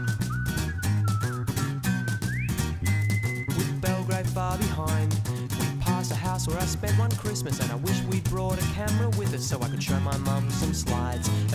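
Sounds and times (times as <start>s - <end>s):
whistled cheerful melody: 0.0s - 4.2s
full band playing drums and bass: 0.0s - 11.5s
speech: 6.4s - 11.5s.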